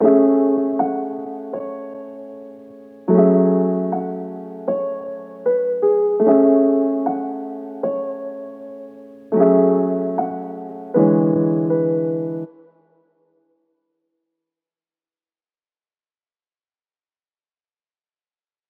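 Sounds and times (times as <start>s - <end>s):
wet piano in F sharp minor: 0.0s - 12.7s.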